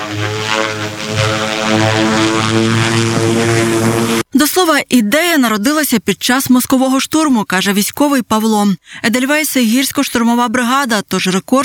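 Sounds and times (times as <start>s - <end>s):
military drone propellers buzzing in flight carrying a large flag: 0.0s - 4.3s
speech: 4.7s - 11.6s.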